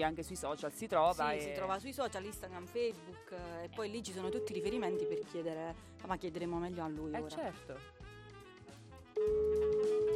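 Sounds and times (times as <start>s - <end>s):
faint busy background: 0.0s - 8.0s
speech: 0.0s - 8.1s
telephone ringback tone during an outgoing call: 4.2s - 5.4s, 9.2s - 10.1s.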